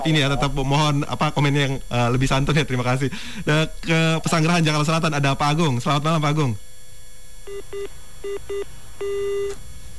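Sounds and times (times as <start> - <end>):
speech: 0.0 - 6.7, 7.5 - 9.7
telephone busy tone beeps after a cut-off listener's call: 7.5 - 9.6.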